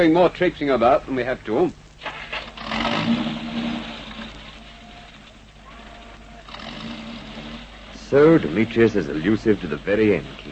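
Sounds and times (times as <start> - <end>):
speech: 0.0 - 1.8, 8.1 - 10.5
car engine starting and revving: 2.4 - 10.5.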